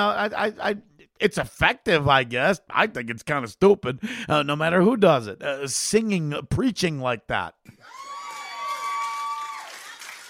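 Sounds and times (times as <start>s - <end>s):
speech: 0.0s - 8.0s
crowd of women screaming and cheering: 7.8s - 10.2s.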